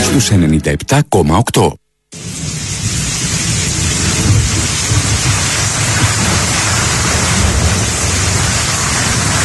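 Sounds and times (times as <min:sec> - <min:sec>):
speech: 0:00.1 - 0:02.3
low rumbles of thunder: 0:02.1 - 0:09.4
steady heavy rain: 0:02.1 - 0:09.4.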